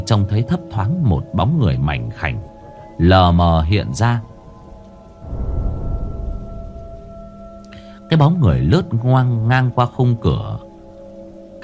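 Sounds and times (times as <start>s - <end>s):
speech: 0.1s - 4.3s, 8.1s - 10.6s
thunder rumbling in a rainstorm: 5.1s - 8.5s.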